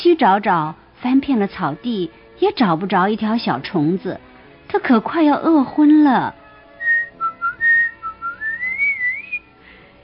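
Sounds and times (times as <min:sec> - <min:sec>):
speech: 0:00.0 - 0:06.4
cheerful whistling for a little field mouse pulling a cart: 0:06.8 - 0:10.0.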